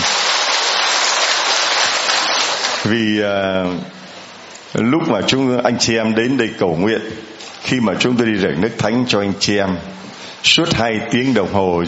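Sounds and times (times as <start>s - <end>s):
church congregation applauding: 0.0s - 2.9s
speech: 2.8s - 4.0s, 4.7s - 11.8s.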